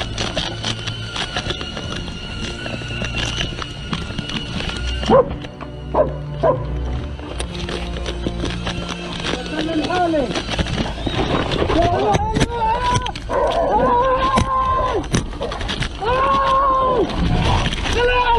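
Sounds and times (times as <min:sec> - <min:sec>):
general commotion: 0:00.0 - 0:18.3
military dog barking: 0:05.1 - 0:05.3
people talking: 0:09.4 - 0:10.4, 0:11.7 - 0:14.5, 0:17.9 - 0:18.3
military dog whining: 0:11.0 - 0:15.6.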